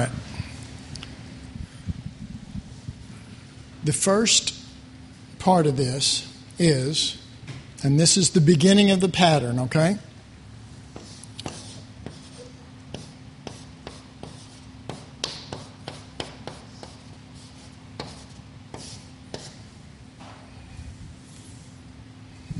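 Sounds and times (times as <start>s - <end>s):
speech: 0.0s - 0.2s, 3.8s - 4.6s, 5.4s - 7.2s, 7.8s - 10.1s
low steady hum: 0.0s - 22.5s
pen tapping and scratching while handwriting a pattern: 11.0s - 17.0s.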